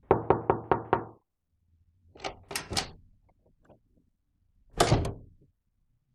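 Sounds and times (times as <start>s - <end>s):
knocking on a household door: 0.1s - 1.2s.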